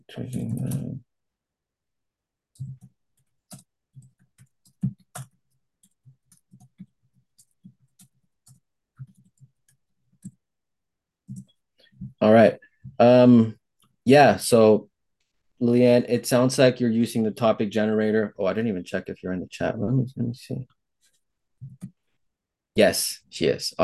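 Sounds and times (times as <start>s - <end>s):
speech: 0.1s - 1.1s, 2.6s - 2.9s, 12.2s - 14.9s, 15.6s - 20.8s, 22.8s - 23.8s
typing on a computer keyboard during an online meeting: 2.5s - 10.4s, 11.2s - 12.2s.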